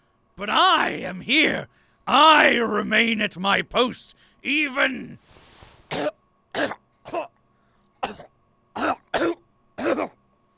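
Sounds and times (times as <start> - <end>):
faint steady hum: 0.0 - 10.5
speech: 0.4 - 7.4, 8.0 - 10.2
person coughing and clearing throat: 5.9 - 7.4, 8.0 - 10.2.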